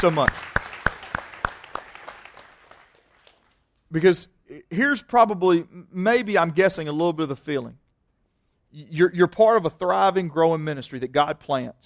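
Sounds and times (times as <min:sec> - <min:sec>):
speech: 0:00.0 - 0:00.4, 0:03.9 - 0:07.8, 0:08.7 - 0:11.8
church congregation applauding: 0:00.0 - 0:03.7.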